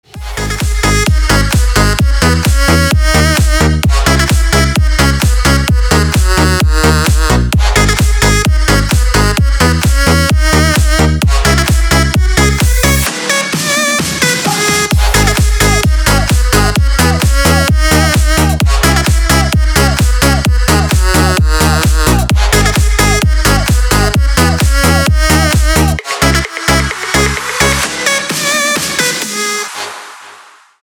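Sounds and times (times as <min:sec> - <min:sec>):
super drum: 0:00.1 - 0:29.4.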